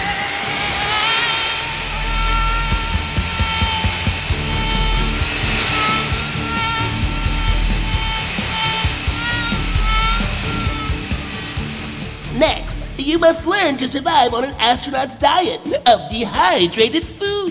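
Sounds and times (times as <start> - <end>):
astronaut training centrifuge spinning: 0.2 - 12.4
speech: 13.3 - 17.3.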